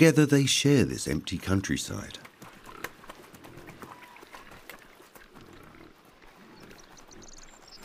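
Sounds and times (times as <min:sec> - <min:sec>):
speech: 0:00.0 - 0:02.3
black Iberian pigs snorting: 0:02.3 - 0:07.4
herd of black Iberian pigs grunting: 0:02.5 - 0:04.6, 0:05.2 - 0:07.3.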